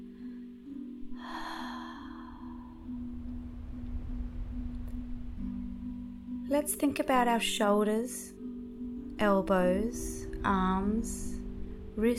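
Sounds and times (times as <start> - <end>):
slow deep breath during a relaxation exercise: 0.0 - 5.6
steady low drone: 0.0 - 12.1
speech: 6.5 - 8.4, 9.2 - 11.4, 12.0 - 12.1.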